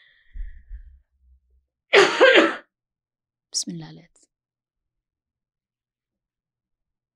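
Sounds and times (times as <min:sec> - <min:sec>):
woman coughing hard: 0:02.0 - 0:02.6
speech: 0:03.6 - 0:04.3.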